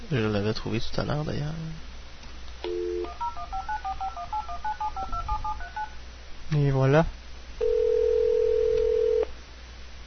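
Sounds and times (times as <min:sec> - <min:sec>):
speech: 0:00.1 - 0:01.9, 0:06.5 - 0:07.2
telephone ringback tone on a telephone line: 0:02.6 - 0:06.0, 0:07.6 - 0:09.3.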